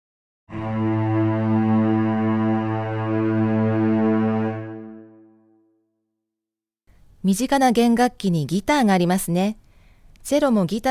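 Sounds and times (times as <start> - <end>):
several cellos bowing the same low note in unison: 0.5 - 5.3
speech: 7.2 - 9.6, 10.2 - 10.8.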